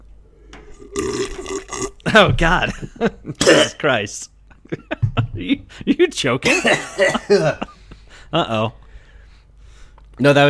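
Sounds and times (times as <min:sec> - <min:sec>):
person drinking plain water: 0:00.7 - 0:02.0
speech: 0:02.0 - 0:07.7, 0:08.3 - 0:08.8, 0:10.2 - 0:10.4.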